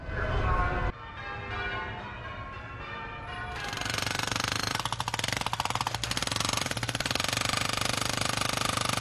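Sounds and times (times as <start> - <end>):
church bells ringing in London: 0.0 - 4.0
jackhammer drill pounding on a London street: 3.6 - 8.9.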